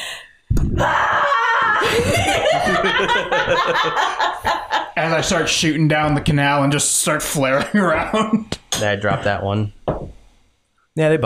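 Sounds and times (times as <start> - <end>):
deep-voiced scream: 0.7 - 2.1
laughter: 0.8 - 5.5, 7.5 - 8.5
speech: 2.6 - 10.0, 11.0 - 11.2.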